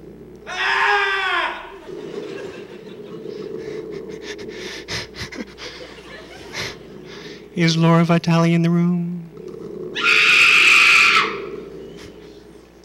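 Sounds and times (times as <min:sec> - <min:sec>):
several voices screaming together: 0:00.4 - 0:03.0, 0:10.0 - 0:12.0
breathy murmuring: 0:01.2 - 0:12.8
laughter: 0:01.6 - 0:07.4
speech: 0:07.6 - 0:09.1.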